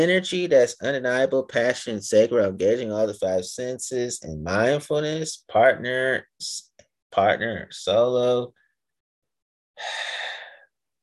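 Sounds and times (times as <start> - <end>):
speech: 0.0 - 8.6, 9.8 - 10.2
person breathing out in a long airy sigh: 9.8 - 10.7.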